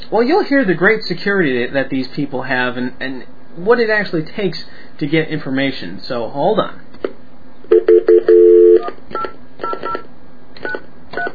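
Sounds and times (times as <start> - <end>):
speech: 0.1 - 7.2
sustained telephone tone: 7.7 - 8.9.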